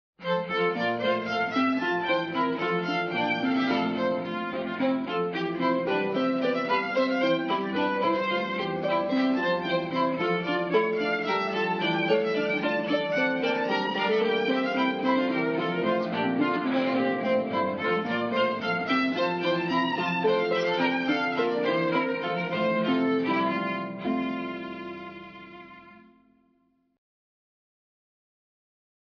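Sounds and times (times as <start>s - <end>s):
baroque orchestral bourree: 0.2s - 25.9s.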